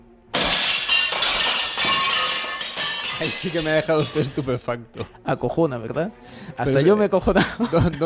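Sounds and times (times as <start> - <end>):
spotlight bulb glass shattering: 0.3 - 4.6
tinkling spray of glass shards: 0.4 - 4.5
speech: 3.2 - 8.0
laughter: 7.2 - 8.0.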